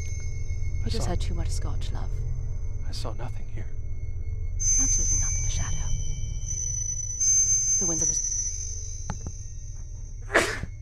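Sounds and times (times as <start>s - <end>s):
steady low hum: 0.0s - 10.8s
speech: 0.9s - 3.8s, 4.6s - 5.8s, 7.8s - 8.3s
sneeze: 10.3s - 10.7s.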